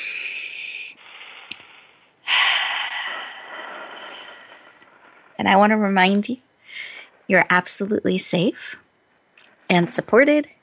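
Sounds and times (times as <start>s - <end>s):
deep clearing breath: 0.0s - 5.4s, 6.6s - 7.2s
speech: 5.4s - 6.5s, 7.3s - 8.8s, 9.7s - 10.6s.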